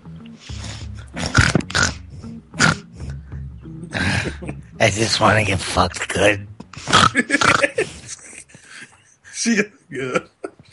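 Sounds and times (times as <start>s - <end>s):
male pig grunting and snorting: 1.0s - 3.0s, 6.8s - 7.7s
laughter: 3.8s - 4.8s, 7.1s - 9.1s
speech: 4.2s - 6.5s, 9.4s - 10.3s.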